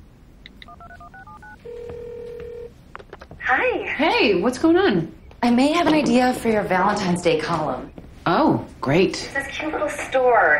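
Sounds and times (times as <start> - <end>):
phone keypad dialing tones: 0.4 - 2.7
home phone beeps: 0.5 - 2.7
speech: 3.5 - 10.5.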